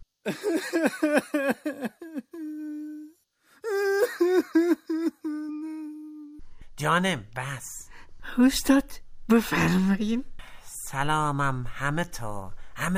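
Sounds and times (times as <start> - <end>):
speech: 0.2 - 1.8, 6.8 - 7.8, 8.4 - 10.3, 10.9 - 12.9
person's voice imitating a baby's rhythmic crying: 1.0 - 6.4.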